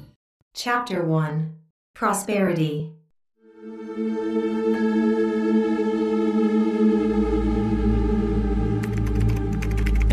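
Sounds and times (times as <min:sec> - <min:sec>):
speech: 0:00.6 - 0:03.0
loud sustained droning musical chord: 0:03.4 - 0:08.8
fast computer keyboard typing of computer code: 0:08.8 - 0:10.1.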